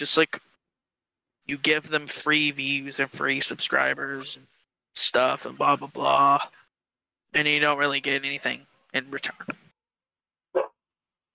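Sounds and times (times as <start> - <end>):
speech: 0.0 - 0.4, 1.5 - 6.6, 7.3 - 9.6
dog barking: 10.6 - 10.8.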